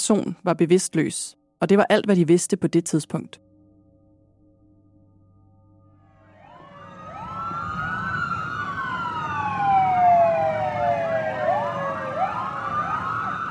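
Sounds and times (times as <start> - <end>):
speech: 0.0 - 3.5
police siren wailing: 6.2 - 13.4.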